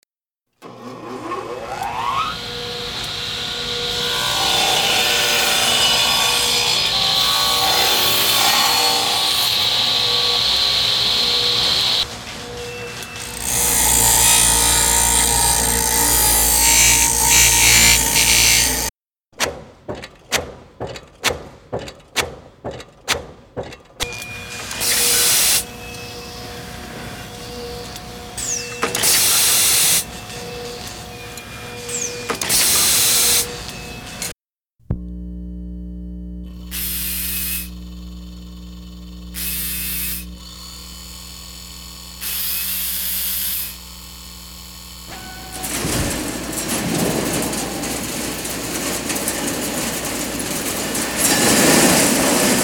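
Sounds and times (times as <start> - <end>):
industrial sounds: 0.6 - 34.3, 44.9 - 52.6.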